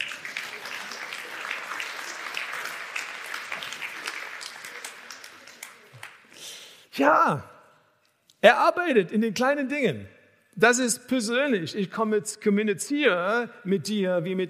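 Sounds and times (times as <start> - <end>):
audience applauding: 0.0 - 6.4
speech: 7.0 - 7.5, 8.4 - 14.4.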